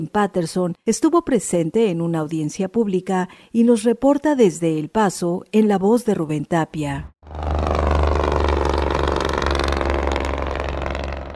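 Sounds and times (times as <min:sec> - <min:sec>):
speech: 0:00.0 - 0:07.6
heavy cargo truck engines rumbling in highway traffic: 0:07.3 - 0:11.3.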